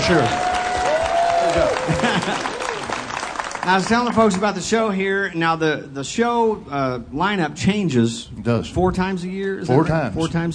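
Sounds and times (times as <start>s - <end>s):
crowd applauding: 0.0s - 4.7s
speech: 0.1s - 0.4s, 1.5s - 2.6s, 3.6s - 10.5s
laughter: 1.4s - 3.1s.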